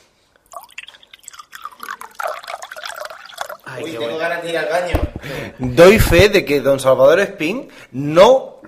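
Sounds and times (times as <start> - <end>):
water poured into a glass: 0.4 - 4.0
speech: 3.8 - 8.5.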